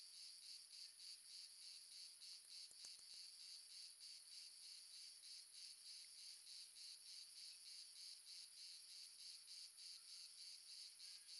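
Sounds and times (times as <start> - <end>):
several crickets giving pulsed chirps in the south of France: 0.0 - 11.3
soft ticks: 2.5 - 3.2.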